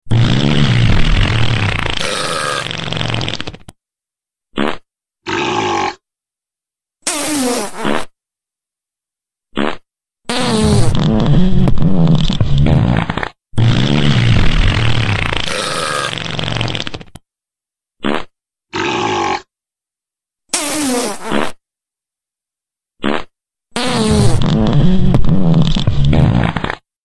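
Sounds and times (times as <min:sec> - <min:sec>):
flatulence: 0:00.0 - 0:03.8, 0:04.5 - 0:06.0, 0:07.0 - 0:08.2, 0:09.5 - 0:17.2, 0:18.0 - 0:19.5, 0:20.5 - 0:21.6, 0:23.0 - 0:26.9.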